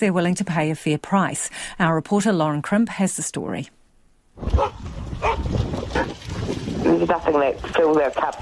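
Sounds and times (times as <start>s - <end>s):
speech: 0.0s - 3.8s, 4.4s - 8.4s
dogs barking at a doggy daycare: 4.6s - 6.2s.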